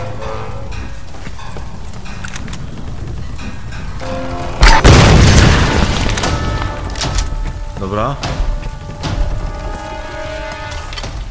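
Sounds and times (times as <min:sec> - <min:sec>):
heavy explosions: 0:04.6 - 0:09.4
speech: 0:07.9 - 0:08.4.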